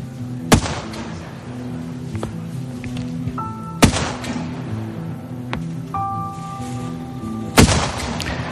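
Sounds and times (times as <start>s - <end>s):
faint tonal whines: 0.0s - 7.6s
military gunfire in a forest: 0.5s - 1.1s, 3.8s - 4.6s, 7.6s - 8.5s.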